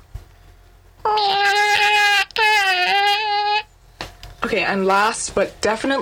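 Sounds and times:
person imitating whiny cat meows: 1.1s - 3.7s
speech: 4.5s - 6.0s.

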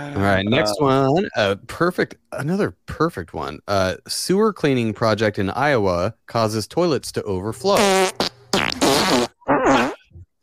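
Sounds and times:
speech: 0.0s - 8.7s
fart sound effect: 7.7s - 10.2s.

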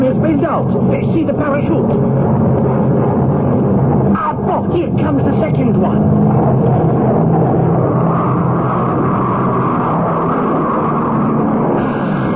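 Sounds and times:
airplane engine drone flying overhead: 0.0s - 12.3s
speech: 0.2s - 3.1s, 4.2s - 8.0s.

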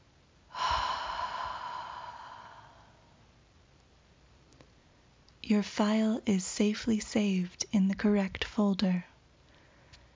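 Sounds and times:
slow deep breath: 0.5s - 3.3s, 9.4s - 10.1s
speech: 5.5s - 9.1s.

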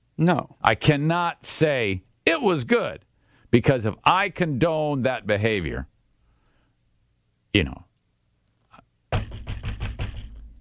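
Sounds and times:
speech: 0.2s - 5.9s, 7.6s - 7.9s
heavy knocking on a door: 9.1s - 10.4s.

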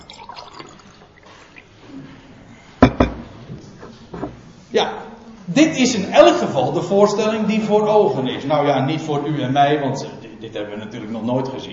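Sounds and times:
person sipping water: 0.0s - 1.9s
short sharp clunk: 2.8s - 3.3s
speech: 4.8s - 11.7s.

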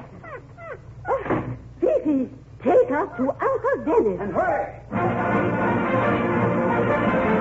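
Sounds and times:
dog whining wanting to go out: 0.2s - 1.3s
speech: 2.1s - 7.3s.

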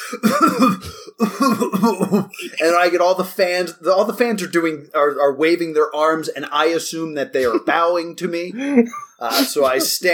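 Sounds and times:
person gasping: 0.0s - 1.6s, 8.6s - 9.8s
person wheezing: 0.0s - 2.6s
person coughing: 0.0s - 2.7s, 9.3s - 9.9s
speech: 0.1s - 10.1s
laughter: 1.2s - 2.8s, 7.4s - 7.9s, 8.6s - 10.1s.

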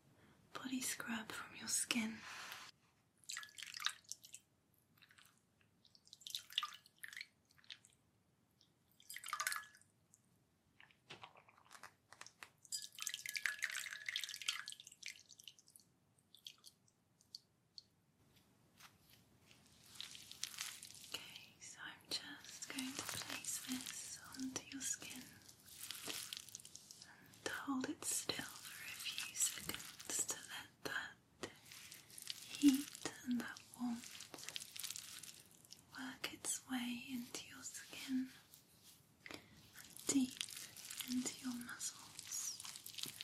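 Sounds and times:
wet massage strokes with soft squelches: 0.9s - 43.2s
hands rubbing skin during a massage: 18.3s - 21.2s, 22.5s - 30.4s, 31.4s - 35.8s, 37.1s - 43.2s.

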